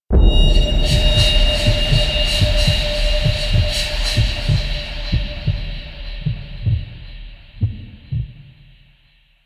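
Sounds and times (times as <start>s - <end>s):
cinematic intro stinger: 0.1s - 8.1s.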